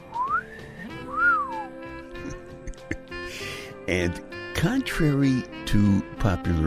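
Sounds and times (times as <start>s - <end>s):
two-note wolf whistle: 0.1s - 1.7s
speech: 3.9s - 6.6s.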